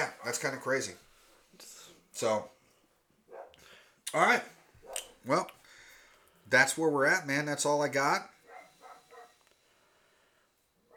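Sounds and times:
speech: 0:00.0 - 0:02.6, 0:04.1 - 0:05.6, 0:06.5 - 0:08.3
two dogs barking behind a house: 0:03.3 - 0:03.6, 0:04.8 - 0:05.3, 0:08.4 - 0:09.4.

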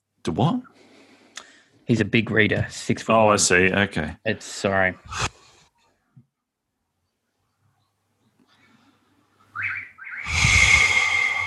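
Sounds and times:
speech: 0:00.2 - 0:00.9, 0:01.9 - 0:05.4
bird chirping: 0:07.0 - 0:11.4.

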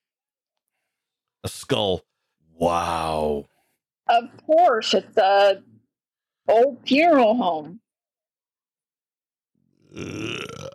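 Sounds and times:
speech: 0:01.7 - 0:03.5, 0:04.1 - 0:05.7, 0:06.5 - 0:07.8, 0:09.9 - 0:10.7
long low burp: 0:09.8 - 0:10.7.

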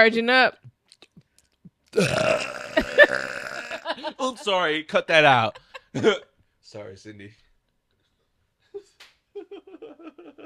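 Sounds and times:
speech: 0:00.0 - 0:00.7, 0:01.9 - 0:07.4
loud burp: 0:01.9 - 0:03.9.

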